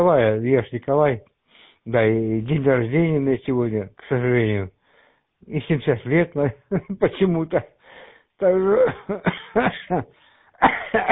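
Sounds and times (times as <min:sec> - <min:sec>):
speech: 0:00.0 - 0:04.8, 0:05.4 - 0:07.8, 0:08.4 - 0:11.1
seventy-year-old man coughing: 0:08.7 - 0:11.1.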